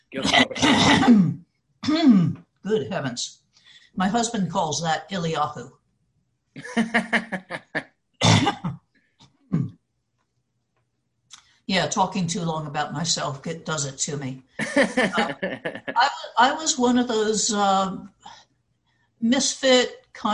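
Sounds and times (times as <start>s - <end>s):
laughter: 0.2s - 0.9s, 6.6s - 7.8s, 14.6s - 16.2s
woman clearing her throat: 0.2s - 2.4s, 6.6s - 8.8s
woman coughing: 0.2s - 2.4s, 8.2s - 8.8s, 15.2s - 15.4s
speech: 1.1s - 3.4s, 4.0s - 5.8s, 6.6s - 7.8s, 11.7s - 18.4s, 19.2s - 20.3s.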